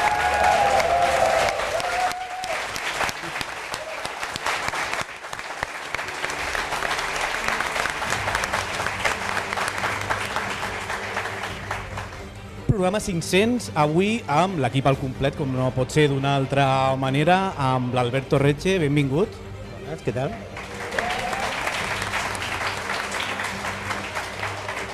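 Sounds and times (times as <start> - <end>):
audience of around a hundred people applauding in a hall in Barcelona: 0.0 - 12.3, 20.6 - 24.9
speech: 13.0 - 20.5.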